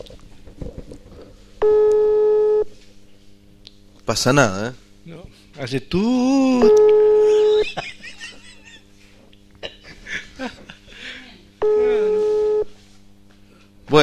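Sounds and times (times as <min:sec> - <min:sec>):
telephone busy signal during a call attempt: 0:01.6 - 0:02.7, 0:06.6 - 0:07.6, 0:11.6 - 0:12.8
speech: 0:04.1 - 0:06.9
people laughing: 0:07.2 - 0:08.9, 0:09.6 - 0:12.2.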